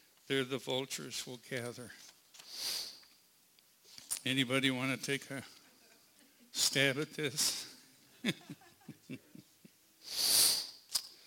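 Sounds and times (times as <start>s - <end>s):
speech: 0.3s - 2.8s, 4.2s - 5.6s, 6.6s - 7.6s, 8.2s - 9.3s
person sniffling through the nose: 2.4s - 3.0s, 10.0s - 10.9s
laughter: 8.2s - 9.7s.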